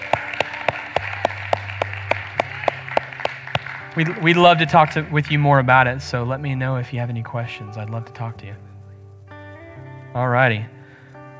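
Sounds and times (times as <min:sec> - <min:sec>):
audience clapping in unison: 0:00.0 - 0:05.7
speech: 0:04.0 - 0:08.7, 0:10.1 - 0:10.8.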